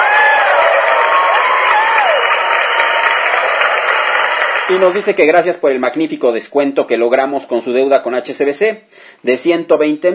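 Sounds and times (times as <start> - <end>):
rising whoops: 0.0 - 4.1
crowd applause: 0.0 - 5.2
speech: 4.7 - 10.1.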